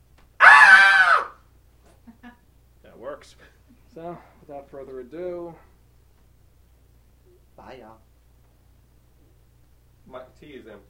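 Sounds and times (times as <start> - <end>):
loud sustained shrill scream from a movie soundtrack: 0.4 - 1.4
speech: 3.2 - 5.7, 7.6 - 8.1, 10.1 - 10.8.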